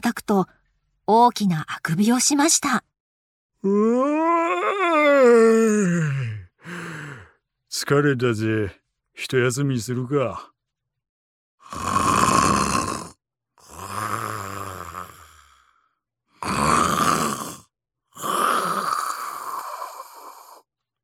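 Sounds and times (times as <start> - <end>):
speech: 0.0 - 2.9, 3.6 - 6.2, 7.7 - 10.5
sleeping wolf snoring after eating its fill: 11.6 - 15.4, 16.4 - 20.6.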